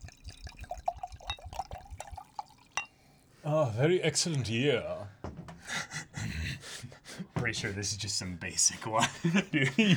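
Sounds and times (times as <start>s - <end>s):
drink pouring into a glass: 0.0s - 3.3s
bright plink of a glass: 0.6s - 3.0s
speech: 3.4s - 5.1s, 7.4s - 9.9s
laughter: 8.8s - 9.9s.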